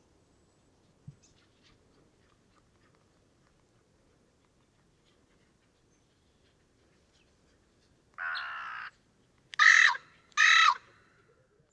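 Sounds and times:
carrion crow calling: 8.2s - 8.9s, 9.6s - 10.9s.

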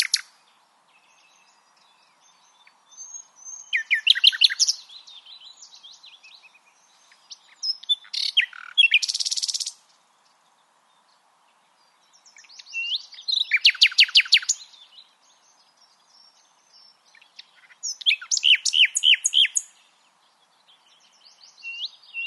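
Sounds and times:
common nightingale Luscinia megarhynchos singing: 0.0s - 22.2s.

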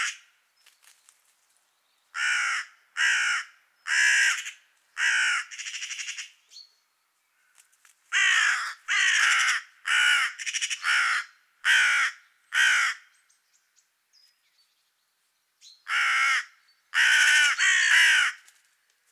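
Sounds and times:
carrion crow cawing: 2.2s - 6.3s, 7.4s - 13.1s, 15.9s - 18.5s.

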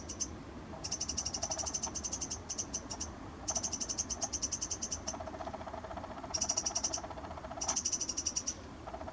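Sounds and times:
Eurasian wren (Troglodytes troglodytes) uttering quick high ticking notes: 0.0s - 9.1s.

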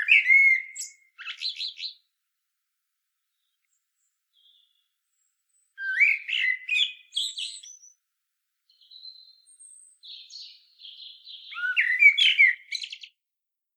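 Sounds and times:
common blackbird Turdus merula singing warbled phrases: 0.0s - 2.1s, 4.3s - 8.0s, 8.7s - 13.2s.

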